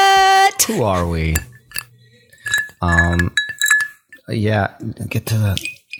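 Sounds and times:
speech: 0.7 - 1.5, 2.8 - 3.4, 4.3 - 5.7
glasses clinking in a toast: 1.2 - 4.4, 5.6 - 5.9.

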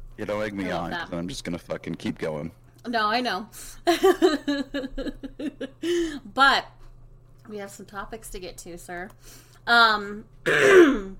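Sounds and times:
speech: 0.2 - 6.8, 7.5 - 11.1
person clearing throat with a rough rasp: 10.5 - 11.1
person letting out a harsh cough-like hack: 10.5 - 11.1.

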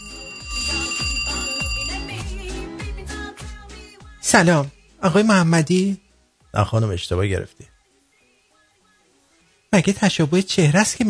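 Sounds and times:
phone electronic ringtone: 0.0 - 2.8
speech: 4.2 - 6.0, 6.6 - 7.7, 9.7 - 11.0.

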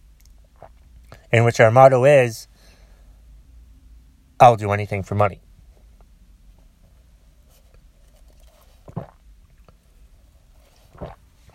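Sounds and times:
speech: 1.3 - 2.5, 4.4 - 5.5
sipping coffee from a cup: 8.0 - 9.8, 10.6 - 11.5.

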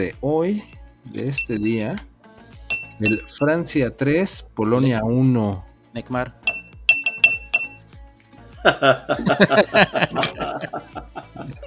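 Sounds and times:
speech: 0.0 - 2.1, 3.0 - 6.4, 8.6 - 11.6
small glass clinking: 0.6 - 2.0, 2.7 - 3.5, 6.5 - 7.8, 10.2 - 10.4
people chuckling: 8.6 - 11.6.

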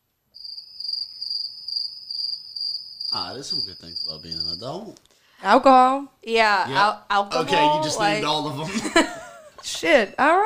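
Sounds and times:
high-pitched cricket chirping sound effect: 0.4 - 5.0
speech: 3.1 - 9.2, 9.8 - 10.4
laughter: 7.4 - 9.6.

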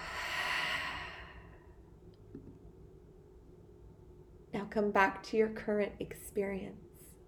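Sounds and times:
person exhaling a deep breath like a heavy sigh: 0.0 - 1.7
speech: 4.6 - 6.9.

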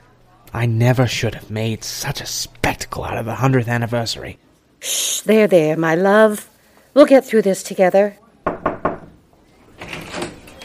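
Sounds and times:
speech: 0.5 - 8.2
knocking on a door: 8.4 - 9.2.

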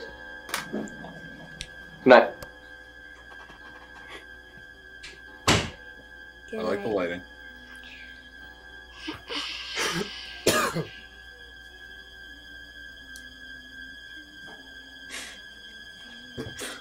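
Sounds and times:
steady electrical hum: 0.0 - 16.8
speech: 2.0 - 2.3, 6.5 - 7.3
person coughing: 9.8 - 11.0.

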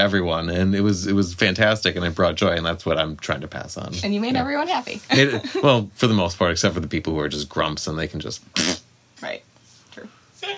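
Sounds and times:
speech: 0.0 - 9.4
laughter: 5.1 - 5.8
fart noise blown with the mouth: 8.5 - 8.9.

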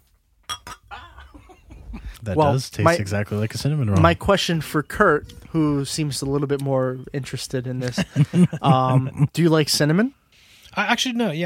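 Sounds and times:
glasses clinking together in a toast: 0.4 - 1.3
laughter: 0.9 - 2.7, 7.8 - 9.3
speech: 2.2 - 10.2, 10.8 - 11.4.

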